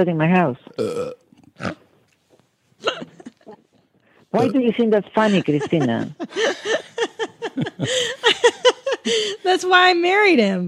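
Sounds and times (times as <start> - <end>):
speech: 0.0 - 1.8, 4.3 - 6.8, 7.5 - 10.6
person burping: 0.7 - 1.8, 4.4 - 4.6
laughter: 2.8 - 3.7, 5.1 - 9.5.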